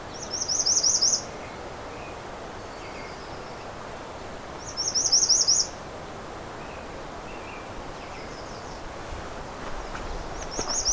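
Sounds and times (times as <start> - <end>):
American redstart singing loud high buzzy song phrases: 0.1 - 5.8, 6.6 - 10.9
American goldfinch calls: 9.7 - 10.9.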